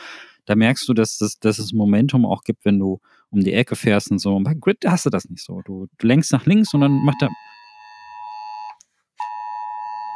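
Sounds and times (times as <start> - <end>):
speech: 0.5 - 7.5
emergency warning alert alarm on national warning day: 6.7 - 10.1.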